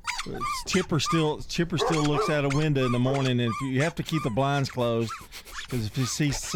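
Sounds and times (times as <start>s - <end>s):
dogs barking excitedly with high-pitched yelps: 0.2s - 3.5s
speech: 0.3s - 6.5s.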